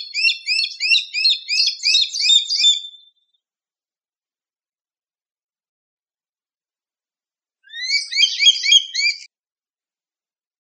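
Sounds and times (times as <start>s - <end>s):
bird chirping: 0.0s - 3.3s, 7.7s - 9.3s.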